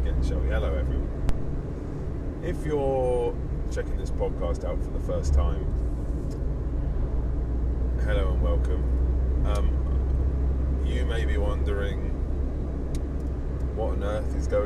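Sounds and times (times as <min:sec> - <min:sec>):
low rumble of a car engine inside a moving vehicle: 0:00.0 - 0:14.6
road noise from inside a moving vehicle: 0:00.0 - 0:14.6
speech: 0:00.3 - 0:01.4, 0:02.4 - 0:05.9, 0:08.0 - 0:09.9, 0:10.8 - 0:12.1, 0:13.8 - 0:14.6.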